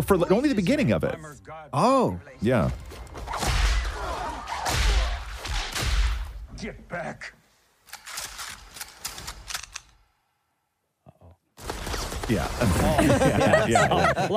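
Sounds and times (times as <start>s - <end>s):
speech: 0.0s - 3.4s, 6.6s - 7.4s, 12.3s - 14.3s
whip cracks in film action scene: 3.3s - 6.4s
laughter: 12.4s - 14.3s.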